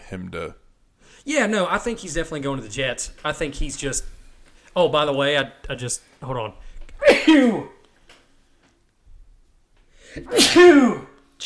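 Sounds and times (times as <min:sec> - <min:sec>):
speech: 0:00.1 - 0:07.8, 0:10.1 - 0:11.4
person sneezing: 0:07.0 - 0:07.8, 0:10.2 - 0:11.2.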